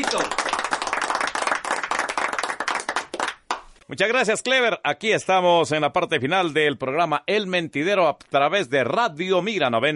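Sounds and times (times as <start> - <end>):
speech: 0.0 - 0.6, 3.9 - 9.9
small group applauding invited guests at end of a radio program: 0.0 - 3.8.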